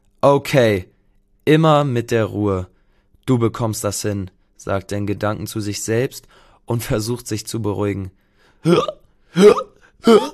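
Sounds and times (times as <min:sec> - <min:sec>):
speech: 0:00.2 - 0:00.9, 0:01.5 - 0:02.7, 0:03.3 - 0:10.3
voiced hiccups of a cartoon dinosaur character performed by a human voice: 0:08.6 - 0:10.3.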